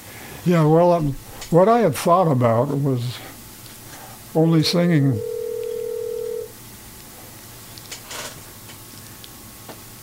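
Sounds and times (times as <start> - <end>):
speech: 0.4 - 3.2, 4.4 - 5.3
telephone ringing with electronic tone: 4.6 - 6.5.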